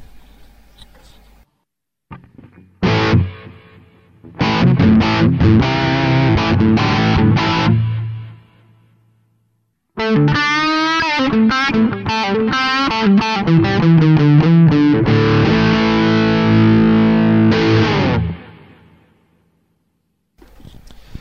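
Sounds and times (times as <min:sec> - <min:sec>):
electric guitar chords strummed through delay and reverb: 0:02.1 - 0:09.0, 0:10.0 - 0:19.2.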